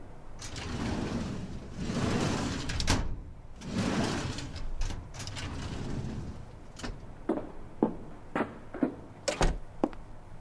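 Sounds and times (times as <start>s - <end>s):
metal drawers of red filing cabinets sliding open and shut in a hallway: 0.4s - 7.5s, 9.2s - 9.7s.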